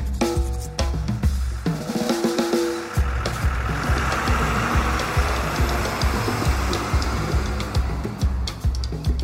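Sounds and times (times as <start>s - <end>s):
bus engine idling with mechanical rattle: 0.6s - 9.2s.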